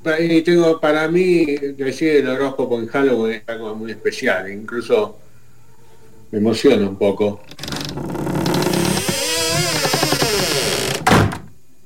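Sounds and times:
speech: 0.0 - 5.2, 6.3 - 8.3
door creaking open: 7.4 - 11.5.

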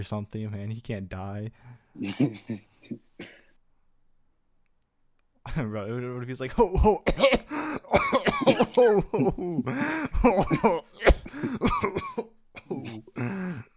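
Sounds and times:
speech: 0.0 - 3.4, 5.5 - 7.4, 8.5 - 12.2
person faking coughs and throat-clearing with speech-like noises: 2.0 - 3.5, 7.1 - 13.4.

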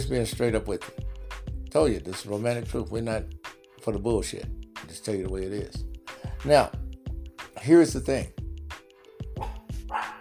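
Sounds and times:
speech: 0.0 - 1.0, 1.7 - 6.8, 7.6 - 8.4
dogs barking at a bird: 9.3 - 10.1.

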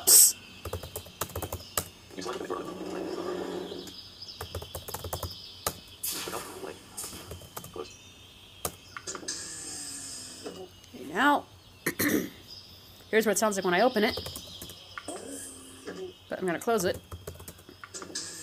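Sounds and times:
steady low noise: 0.0 - 18.4
typing on a computer keyboard: 0.6 - 1.9, 4.4 - 5.8, 7.3 - 7.8, 14.2 - 14.8, 16.8 - 17.7
speech: 13.1 - 14.4, 16.4 - 17.1.

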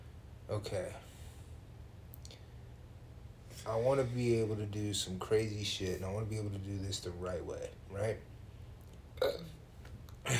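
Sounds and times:
low rumble: 0.0 - 10.3
speech: 0.5 - 1.1, 3.6 - 8.3, 9.2 - 9.6
person burping: 9.2 - 9.6.

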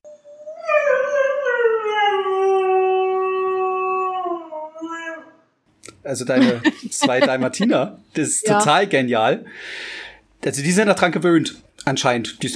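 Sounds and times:
dog howling: 0.4 - 5.5
speech: 6.1 - 12.5
laughter: 6.3 - 7.9.

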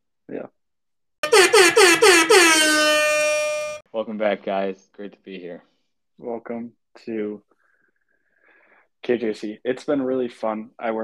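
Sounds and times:
speech: 0.3 - 0.6, 1.7 - 3.0, 3.9 - 7.5, 9.0 - 11.0
air horn blasts: 1.2 - 3.8.

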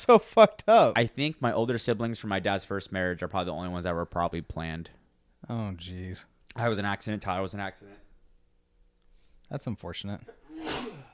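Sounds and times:
speech: 0.0 - 8.0, 9.5 - 11.0
person sneezing: 10.3 - 11.1.

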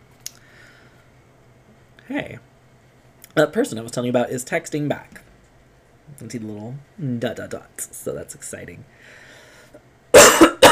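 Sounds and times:
speech: 2.1 - 2.5, 3.4 - 5.3, 6.2 - 9.2
person coughing: 10.1 - 10.6.

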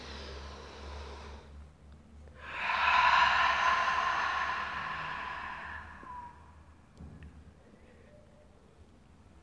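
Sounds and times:
deep ujjayi breathing: 0.0 - 1.6, 2.3 - 6.9.

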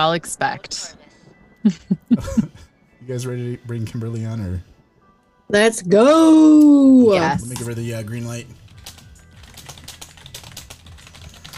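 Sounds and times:
speech: 0.0 - 1.0, 1.6 - 4.7, 5.5 - 8.6
laughter: 1.6 - 2.7
typing on a loud mechanical computer keyboard: 8.7 - 11.5.

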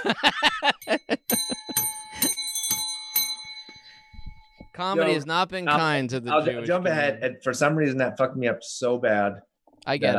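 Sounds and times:
speech: 0.0 - 1.1, 4.8 - 10.1
laughter: 0.0 - 1.6
bell ringing: 0.6 - 5.2.

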